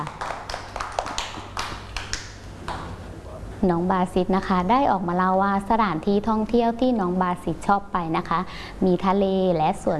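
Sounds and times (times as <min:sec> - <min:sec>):
group of children clapping: 0:00.0 - 0:03.0
speech: 0:03.6 - 0:09.9.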